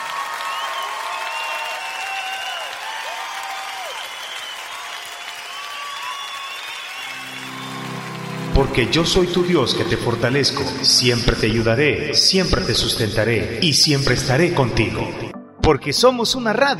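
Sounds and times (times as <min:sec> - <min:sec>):
scattered cheers and whoops from an audience: 0:00.0 - 0:08.5
audience applauding: 0:00.0 - 0:11.6
speech: 0:08.6 - 0:16.7.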